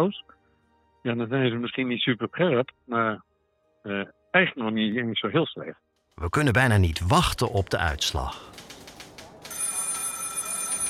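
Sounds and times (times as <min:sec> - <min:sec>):
speech: 0:00.0 - 0:00.4, 0:01.0 - 0:08.6
telephone bell ringing in an office: 0:09.5 - 0:10.8.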